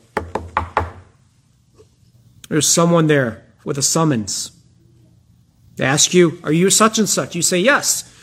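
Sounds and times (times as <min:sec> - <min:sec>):
knocking on a wooden door: 0:00.2 - 0:01.1
speech: 0:02.5 - 0:04.6, 0:05.8 - 0:08.2.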